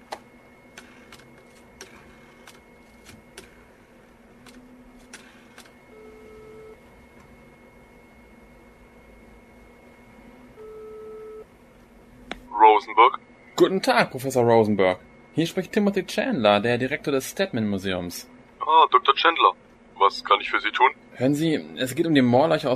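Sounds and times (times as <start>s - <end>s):
telephone call ringing tones on the line: 5.8s - 6.8s, 10.4s - 11.5s
speech: 12.8s - 22.7s.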